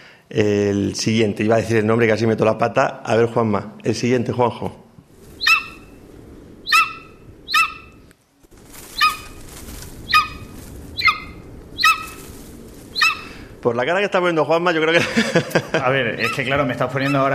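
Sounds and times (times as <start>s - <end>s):
speech: 0.3s - 4.8s, 13.6s - 17.3s
low rush of wind or outdoor noise: 0.5s - 17.3s
golden eagle yelping calls: 5.2s - 8.1s, 8.7s - 13.6s, 16.2s - 17.3s
laughter: 14.9s - 16.4s.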